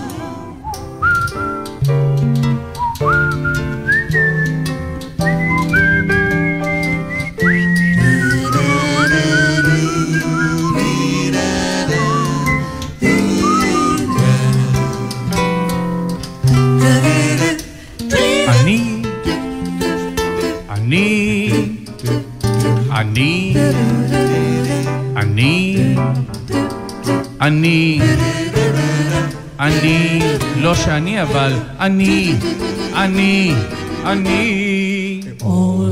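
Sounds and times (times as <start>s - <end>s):
full steady musical accompaniment: 0.0s - 35.9s
person whistling a sustained gliding melody: 0.6s - 1.6s, 2.8s - 15.2s
speech: 30.7s - 34.6s.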